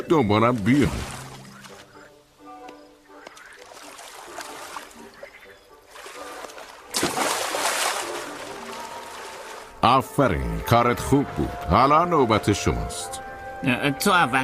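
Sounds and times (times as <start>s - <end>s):
water splashing: 0.0s - 2.0s, 3.1s - 9.8s
speech: 0.1s - 1.2s, 9.8s - 14.4s
seagull paddling its feet along the water surface while swimming: 0.5s - 9.8s.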